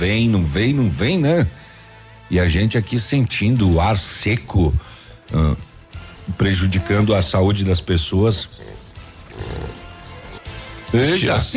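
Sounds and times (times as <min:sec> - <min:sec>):
speech: 0:00.0 - 0:01.7, 0:02.3 - 0:05.7, 0:06.3 - 0:08.8, 0:10.9 - 0:11.5
pig grunting with deep rough snorting: 0:05.3 - 0:11.1.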